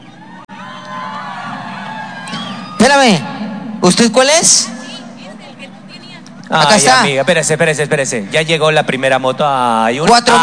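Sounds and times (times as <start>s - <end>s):
crowd screaming and cheering at a raffle drawing for motorcycle prizes: 0.0s - 4.8s
speech: 2.9s - 4.7s, 6.5s - 10.4s.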